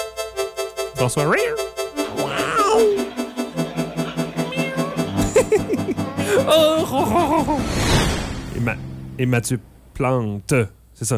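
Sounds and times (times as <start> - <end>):
steady rhythmic pulsing background: 0.0 - 6.5
speech: 1.0 - 3.0, 6.3 - 8.0, 8.6 - 11.1
cat meowing: 2.0 - 3.2, 4.0 - 5.2
laughter: 2.0 - 7.8.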